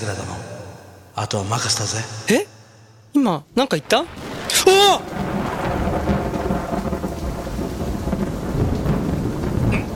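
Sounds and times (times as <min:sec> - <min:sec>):
speech: 0:00.0 - 0:00.4, 0:01.2 - 0:05.3
steady heavy rainstorm: 0:03.4 - 0:09.9
loud thunder from a lightning strike: 0:03.6 - 0:09.9.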